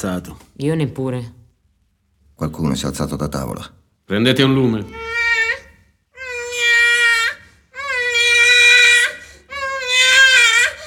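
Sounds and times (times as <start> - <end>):
speech: 0.0 - 1.4, 2.4 - 5.1
baby crying: 4.8 - 10.8.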